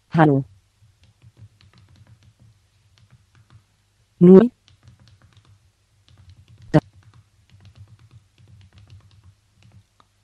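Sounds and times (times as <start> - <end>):
speech: 0.2 - 0.5, 4.2 - 4.6
reply typed on a computer keyboard: 0.8 - 3.7, 4.5 - 10.2.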